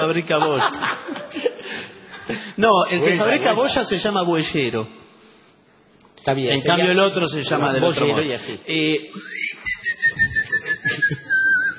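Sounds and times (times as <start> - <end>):
speech: 0.0 - 1.5, 2.3 - 5.1, 6.2 - 10.2, 11.0 - 11.4
laughter: 0.2 - 2.3, 10.0 - 11.7
boyero bird whistling call: 9.2 - 11.7.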